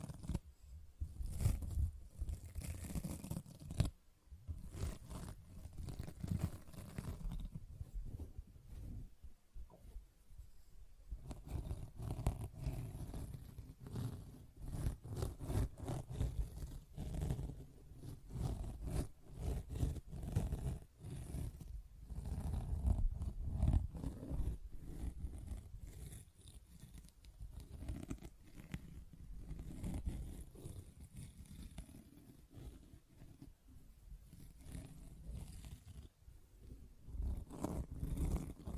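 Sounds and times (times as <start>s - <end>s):
sponge being scratched, brushed and squished: 0.0s - 0.4s, 1.0s - 9.0s, 11.2s - 38.7s.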